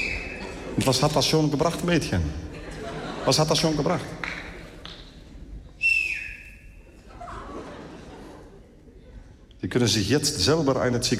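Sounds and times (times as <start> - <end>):
person whistling a single sustained note: 0.0 - 0.4, 5.8 - 6.9
laughter: 0.0 - 4.8, 6.9 - 9.6
speech: 0.8 - 2.5, 3.2 - 4.2, 9.6 - 11.1.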